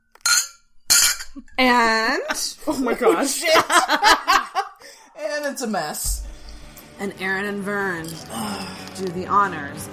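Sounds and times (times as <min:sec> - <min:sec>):
glasses clinking in a toast: 0:00.2 - 0:01.4
speech: 0:01.4 - 0:04.4, 0:05.2 - 0:06.3, 0:07.0 - 0:09.9
laughter: 0:02.7 - 0:04.8.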